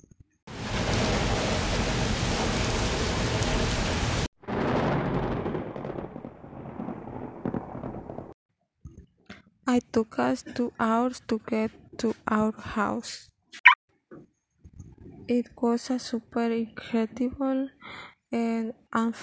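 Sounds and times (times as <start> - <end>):
heavy rain falling: 0.5 - 8.3
speech: 9.7 - 13.3, 15.3 - 19.2.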